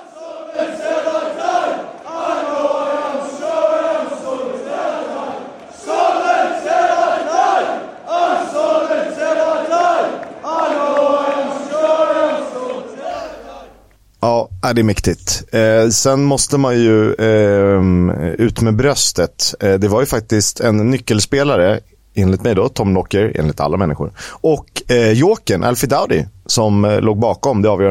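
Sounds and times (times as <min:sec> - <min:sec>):
football supporters chanting in a large stadium: 0:00.0 - 0:13.9
speech: 0:14.7 - 0:27.8.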